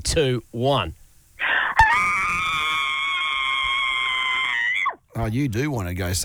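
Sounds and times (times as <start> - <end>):
speech: 0.1 - 1.0, 5.2 - 6.2
woman screaming high-pitched over the phone: 1.4 - 5.0.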